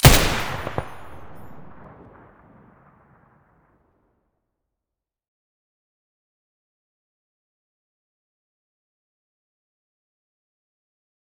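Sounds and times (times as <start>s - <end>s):
M249 machine gun muzzle blasts: 0.0s - 2.0s.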